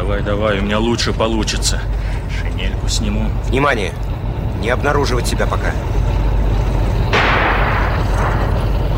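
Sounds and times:
speech: 0.1 - 6.0
anti-tank rifle shot fired at tanks in a wartime trench fight: 7.2 - 8.8.

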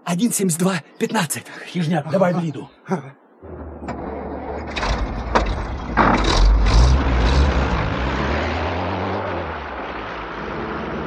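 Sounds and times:
speech: 0.1 - 3.6
car engine driving off along a side lane onto a highway: 3.4 - 11.0.

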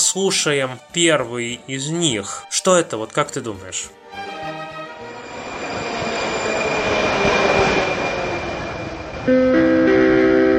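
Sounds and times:
speech: 0.1 - 4.5, 9.2 - 9.7
Prague metro train rolling with a continuous low rumble: 3.1 - 10.5
steady tonal signal: 3.9 - 10.5.

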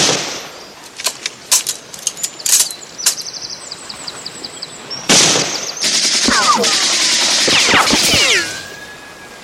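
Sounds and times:
bursts of gunfire in irregular volleys: 5.1 - 8.6.

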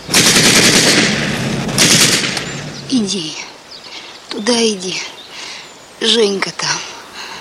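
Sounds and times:
loud rapid gunfire rattling in a war scene: 0.0 - 2.7
speech: 2.9 - 3.4, 4.4 - 5.2, 6.0 - 6.7.

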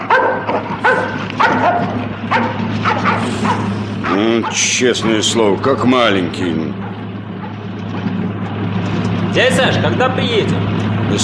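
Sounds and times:
dog barking: 0.0 - 5.2, 6.7 - 8.1
steady low engine-like hum: 0.0 - 11.2
speech: 4.3 - 6.8, 9.4 - 11.2.

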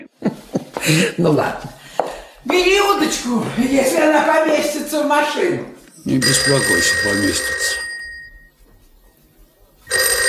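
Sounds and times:
speech: 0.2 - 1.7, 2.4 - 7.8
telephone bell ringing: 6.0 - 8.5, 9.9 - 10.2.

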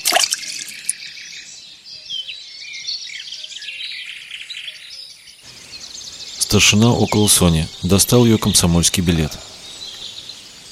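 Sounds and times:
splash of a knife thrown into water: 0.0 - 0.9
birds chirping outdoors: 0.0 - 10.7
speech: 6.5 - 9.5.

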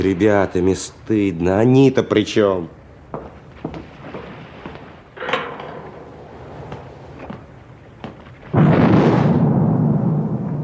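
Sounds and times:
speech: 0.0 - 2.8
artillery salvo fired from a turret during live-fire practice: 5.0 - 10.6.

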